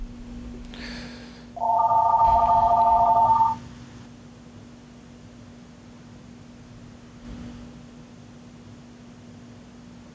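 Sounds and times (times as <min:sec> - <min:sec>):
quiet hum: 0:00.0 - 0:10.1
faint tone: 0:01.6 - 0:03.6
telephone ringing with electronic trill: 0:01.6 - 0:03.6.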